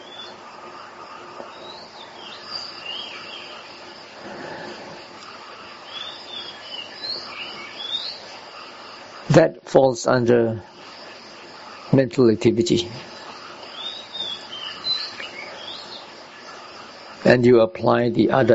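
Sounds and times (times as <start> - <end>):
birds chirping and twittering: 0.0 - 18.5
steady outdoor hum of insects: 0.0 - 18.5
speech: 9.4 - 10.7, 11.9 - 13.1, 17.3 - 18.5.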